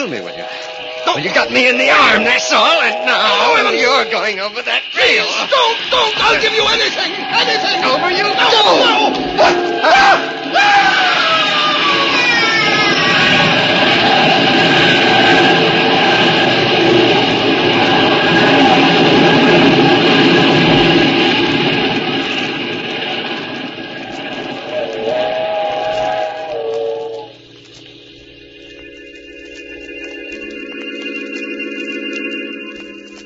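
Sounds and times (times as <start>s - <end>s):
speech: 0.0s - 10.8s
steam train wailing whistle tones: 0.0s - 22.0s, 24.6s - 27.4s
steam train roaring past: 0.0s - 33.2s.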